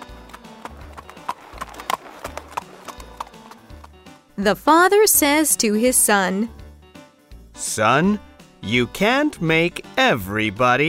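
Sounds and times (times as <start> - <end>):
donkey hooves clip-clopping as it trots off: 0.0 - 4.2
speech: 4.4 - 6.6, 7.6 - 10.8.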